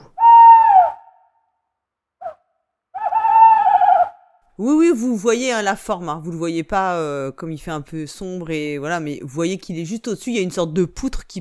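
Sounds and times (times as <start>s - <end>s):
owl hooting: 0.0s - 1.2s, 3.0s - 4.2s
speech: 4.6s - 11.3s.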